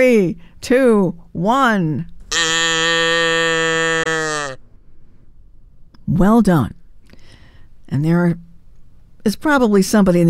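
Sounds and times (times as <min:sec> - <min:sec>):
speech: 0:00.0 - 0:02.2, 0:06.1 - 0:06.8, 0:07.9 - 0:08.5, 0:09.2 - 0:10.2
cow mooing: 0:02.3 - 0:04.6.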